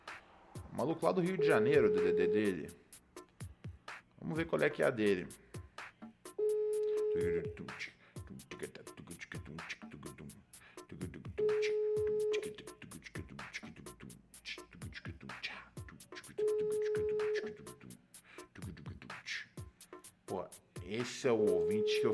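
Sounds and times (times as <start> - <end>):
speech: 0.8 - 2.8, 4.2 - 5.4, 7.2 - 9.8, 21.0 - 22.1
ringback tone of an outgoing phone call: 1.4 - 2.7, 6.4 - 7.4, 11.4 - 12.6, 16.4 - 17.6, 21.5 - 22.1.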